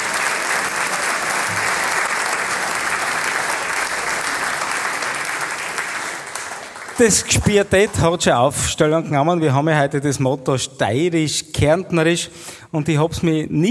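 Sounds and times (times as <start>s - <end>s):
applause from a large audience: 0.0s - 8.4s
speech: 7.0s - 13.6s.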